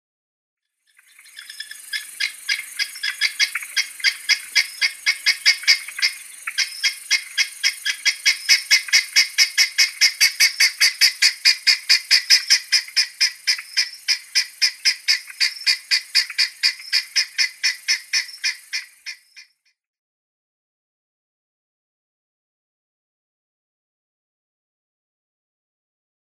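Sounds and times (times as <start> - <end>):
Helmeted Guineafowl calling: 0.9 - 19.6.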